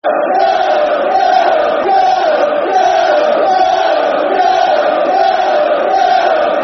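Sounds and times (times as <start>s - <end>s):
football crowd chanting: 0.0s - 6.6s.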